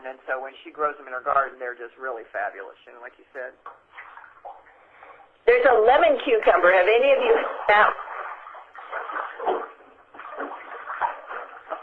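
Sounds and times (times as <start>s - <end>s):
steady rushing water: 0.0s - 11.8s
speech: 0.2s - 4.6s, 5.4s - 8.0s.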